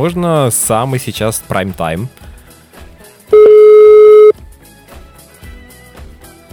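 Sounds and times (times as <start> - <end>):
speech: 0.0 - 2.2
telephone ringback tone on an unanswered call to a restaurant: 3.4 - 4.3.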